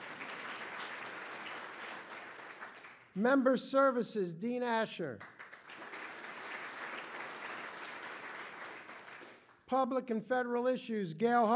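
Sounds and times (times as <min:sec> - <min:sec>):
room full of people applauding: 0:00.0 - 0:03.2, 0:05.1 - 0:09.7
speech: 0:03.2 - 0:05.4, 0:09.7 - 0:11.5.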